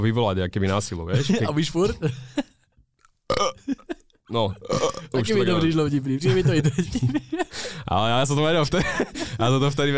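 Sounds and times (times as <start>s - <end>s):
speech: 0.0s - 2.4s, 3.4s - 9.9s
man deliberately forcing throaty burps: 3.3s - 3.9s, 4.5s - 5.6s
laughter: 6.2s - 7.8s, 8.6s - 9.7s.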